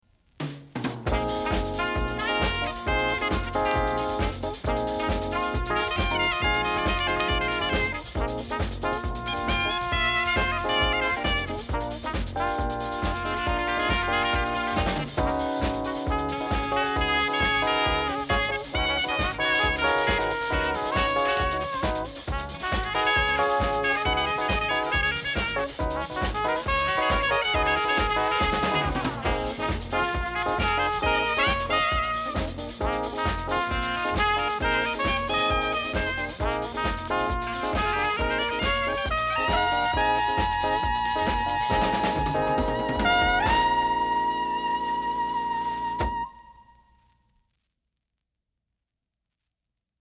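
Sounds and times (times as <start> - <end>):
disco dance rhythms: 0.4 - 45.2.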